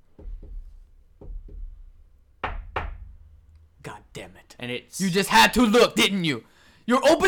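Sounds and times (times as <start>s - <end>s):
knocking on a tunnel wall: 0.0s - 4.4s
speech: 3.8s - 7.2s.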